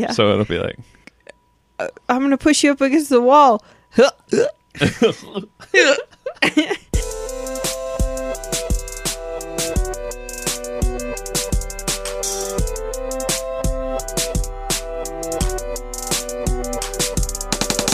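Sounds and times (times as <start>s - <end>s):
speech: 0.0s - 1.0s, 1.8s - 6.8s
hiccups: 4.3s - 4.6s
steady rhythmic music track: 7.0s - 17.9s.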